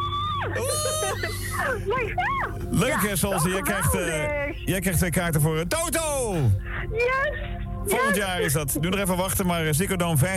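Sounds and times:
person shrieking and squealing with excitement: 0.0 - 1.8
steady low hum: 0.0 - 10.3
speech: 0.4 - 10.3.

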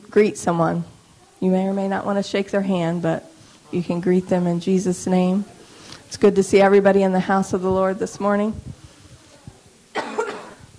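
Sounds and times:
speech: 0.1 - 8.7
person coughing: 9.9 - 10.7.

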